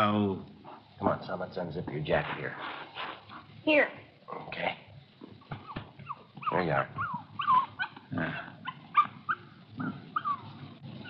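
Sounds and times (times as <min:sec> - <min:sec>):
speech: 0:00.0 - 0:04.8, 0:06.5 - 0:07.1, 0:08.1 - 0:08.5
young female puppy whining squeaks: 0:05.5 - 0:09.5, 0:10.1 - 0:11.0
young female puppy yipping: 0:05.5 - 0:11.0.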